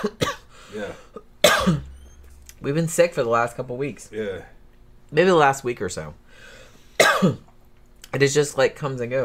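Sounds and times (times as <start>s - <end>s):
harsh rasping coughing fit: 0.0s - 2.0s, 7.0s - 7.5s
speech: 2.6s - 6.6s, 7.2s - 7.5s, 8.1s - 9.2s.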